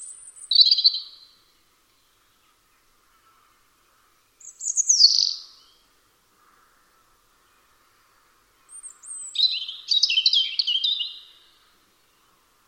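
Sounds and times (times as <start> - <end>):
European robin song of high thin warbling notes: 0.0 - 1.4, 4.4 - 5.8, 8.6 - 12.4.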